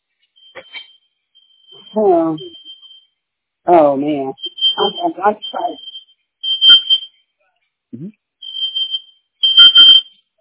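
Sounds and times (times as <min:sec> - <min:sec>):
sensitive kitchen smoke alarm shrieking in high-pitched bursts: 0:00.4 - 0:03.1, 0:03.9 - 0:07.2, 0:08.4 - 0:10.3
speech: 0:00.6 - 0:00.8, 0:02.0 - 0:02.6, 0:03.7 - 0:05.9, 0:08.0 - 0:08.2.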